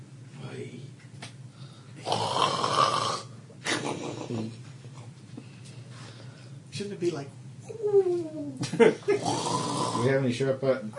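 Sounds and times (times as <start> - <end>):
person imitating snoring with rasping breaths: 2.0 - 3.3, 9.2 - 10.1
speech: 6.8 - 10.9.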